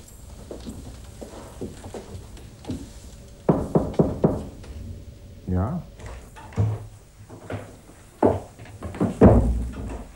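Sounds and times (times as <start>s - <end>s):
knocking on a doctor's door: 3.5s - 4.6s, 8.2s - 10.0s
speech: 5.5s - 5.9s.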